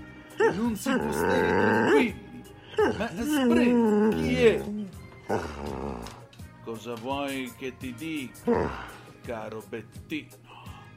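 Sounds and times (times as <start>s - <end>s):
dog growling whine: 0.3s - 6.3s
speech: 0.5s - 2.2s, 2.8s - 10.4s.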